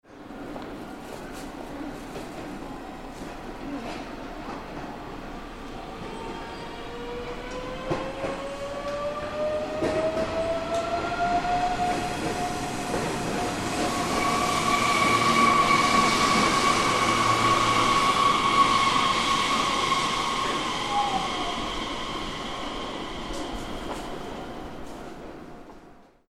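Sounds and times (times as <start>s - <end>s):
train: 0.0s - 26.2s.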